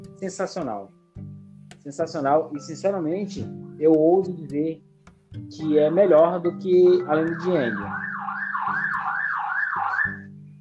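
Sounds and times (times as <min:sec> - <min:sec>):
speech: 0:00.2 - 0:01.0, 0:01.8 - 0:08.0
police siren wailing outside: 0:06.9 - 0:10.3.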